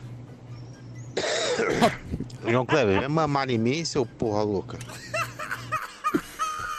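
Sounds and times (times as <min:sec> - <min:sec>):
person coughing harshly: 0:01.2 - 0:02.0
laughter: 0:01.6 - 0:03.4, 0:04.8 - 0:06.7
speech: 0:01.6 - 0:05.1.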